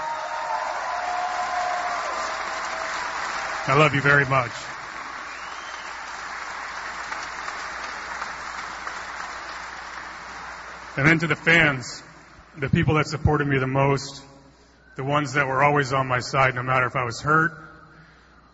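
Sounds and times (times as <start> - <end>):
large crowd applauding and cheering in a big space: 0.0 - 11.8
man's amplified voice speaking: 3.6 - 4.7, 11.0 - 17.8
speech: 3.6 - 4.7, 11.0 - 14.3, 15.0 - 17.6.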